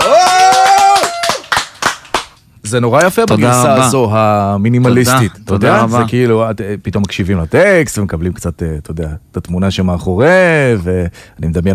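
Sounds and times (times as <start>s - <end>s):
hands clapping: 0.0s - 2.4s
speech: 2.7s - 11.7s.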